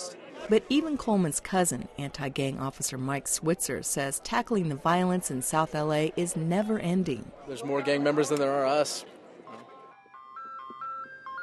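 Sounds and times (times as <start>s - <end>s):
speech: 0.4s - 9.2s
ice cream truck jingle in a working-class city neighborhood: 9.7s - 11.4s.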